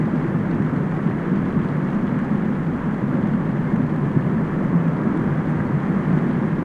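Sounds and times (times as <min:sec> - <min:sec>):
ambience: 0:00.0 - 0:06.6.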